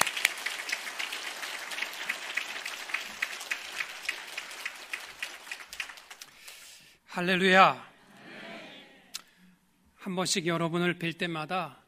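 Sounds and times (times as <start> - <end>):
church audience applause welcoming a pastor: 0.0 - 6.6
speech: 7.2 - 7.9, 10.0 - 11.8.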